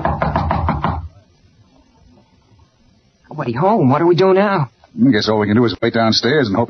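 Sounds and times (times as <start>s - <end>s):
firm knocking on a door: 0.0s - 1.2s
speech: 3.4s - 6.6s.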